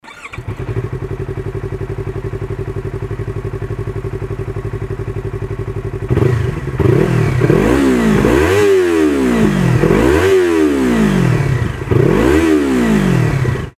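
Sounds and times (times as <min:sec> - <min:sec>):
YZF-R25 motorcycle with Akrapovic exhaust: 0:00.1 - 0:13.7.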